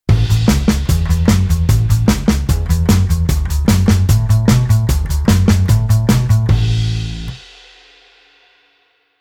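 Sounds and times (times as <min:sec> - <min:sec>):
rock and roll bass: 0:00.0 - 0:07.5.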